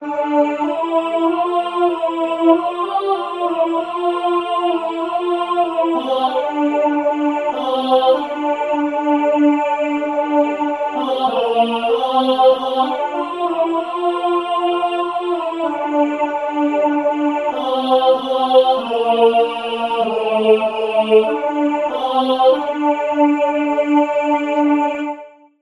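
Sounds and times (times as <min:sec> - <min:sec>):
alto voice singing over SATB choir: 0:00.0 - 0:25.4.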